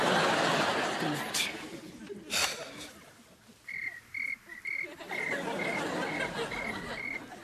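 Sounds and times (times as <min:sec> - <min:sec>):
laughter: 0:00.0 - 0:03.6, 0:04.5 - 0:07.4
crickets chirping on a played tape: 0:03.6 - 0:07.4.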